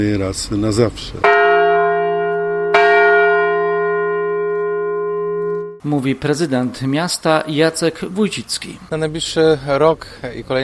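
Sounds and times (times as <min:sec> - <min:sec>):
speech: 0:00.0 - 0:01.4, 0:05.8 - 0:10.6
large peace bell struck with a metallic clang: 0:01.2 - 0:07.7.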